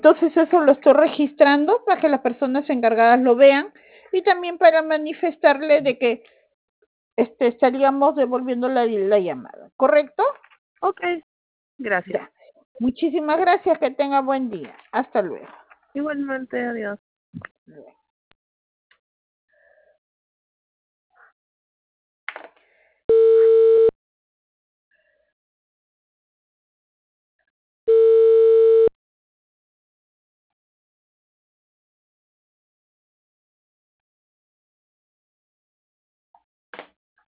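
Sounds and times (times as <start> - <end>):
speech: 0.0 - 6.4, 7.2 - 18.0
telephone busy signal beeps: 23.1 - 23.9, 27.9 - 28.9.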